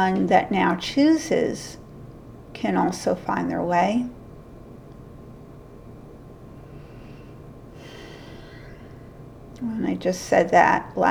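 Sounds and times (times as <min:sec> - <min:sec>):
speech: 0:00.0 - 0:01.8, 0:02.6 - 0:04.2, 0:09.6 - 0:11.1
faint steady low hum: 0:00.0 - 0:11.1
person taking a deep inhaled breath: 0:06.6 - 0:09.1.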